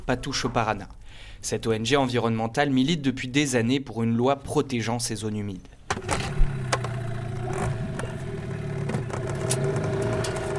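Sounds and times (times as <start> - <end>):
speech: 0.1 - 6.3
boat motor engine droning on the Paraná river near Rosario Argentina: 6.2 - 10.5.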